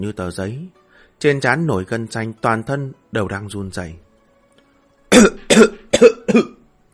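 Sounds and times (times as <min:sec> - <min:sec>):
speech: 0:00.0 - 0:04.1, 0:05.2 - 0:06.6
man dry coughing while coughing up blood: 0:05.1 - 0:06.6.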